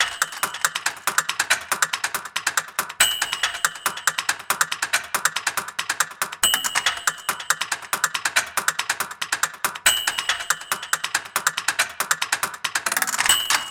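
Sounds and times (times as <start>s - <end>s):
typewriter typing loop: 0.0s - 13.6s.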